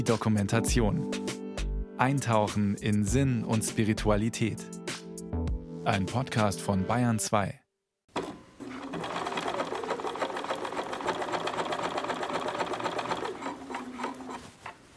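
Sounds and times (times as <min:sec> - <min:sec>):
speech: 0:00.0 - 0:01.4, 0:02.0 - 0:04.8, 0:05.8 - 0:07.6
sewing machine basting the hem of homemade trousers: 0:08.1 - 0:14.8.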